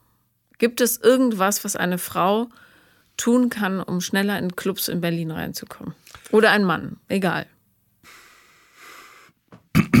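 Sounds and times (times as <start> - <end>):
speech: 0.6 - 8.2
breathy intake of air: 8.0 - 9.4
harsh two-part throat clearing: 9.7 - 9.9.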